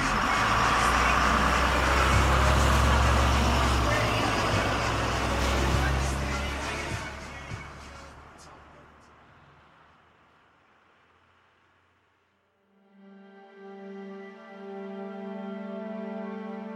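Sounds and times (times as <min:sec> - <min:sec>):
bus engine rumbling as it pulls away: 0:00.0 - 0:12.4
broad road noise: 0:00.0 - 0:16.7.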